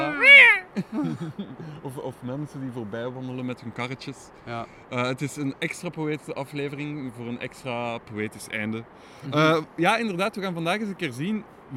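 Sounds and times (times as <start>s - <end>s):
seagull cry by the sea at Oostduinkerke: 0.0s - 0.8s
laughter: 0.0s - 1.8s
speech: 0.8s - 11.7s.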